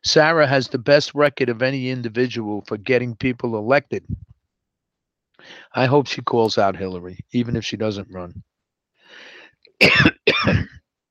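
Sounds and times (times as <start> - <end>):
speech: 0.0 - 4.3, 5.4 - 8.5, 9.8 - 10.8
brief breathy sound: 5.4 - 5.8, 9.0 - 9.7
man coughing harshly: 9.8 - 10.8.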